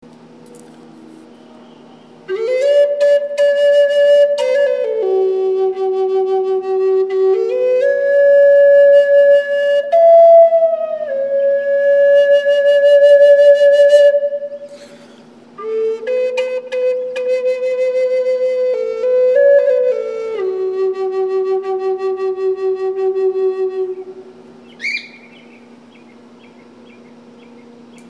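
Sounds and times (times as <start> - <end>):
Native American flute playing bird song: 0.2 - 28.0.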